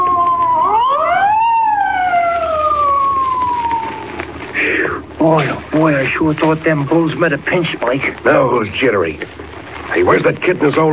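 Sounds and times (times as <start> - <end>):
police car siren wailing as it passes: 0.0 - 4.4
steady rumble of traffic: 0.0 - 10.9
speech: 5.4 - 9.4, 10.0 - 10.9.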